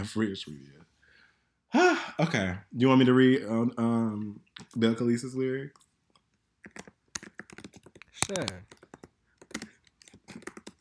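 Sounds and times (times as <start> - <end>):
speech: 0.0 - 0.8, 1.7 - 5.8, 6.6 - 6.9, 8.3 - 8.8
typing on a computer keyboard: 6.6 - 10.7.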